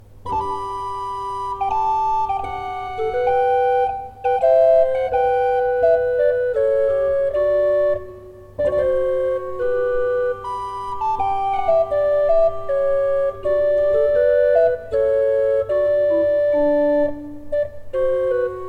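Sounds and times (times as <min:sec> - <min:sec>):
pipe organ: 0:00.2 - 0:18.6.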